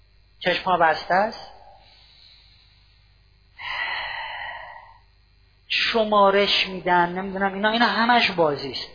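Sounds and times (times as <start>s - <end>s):
speech: 0.4s - 1.6s, 5.9s - 8.9s
deep breath in through the nose and out through the mouth: 1.6s - 5.2s.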